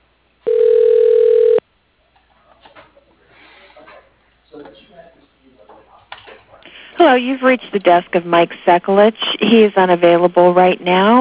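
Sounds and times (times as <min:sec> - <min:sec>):
electronic telephone ring as a call is connected to voicemail: 0:00.5 - 0:01.6
speech: 0:07.0 - 0:11.1.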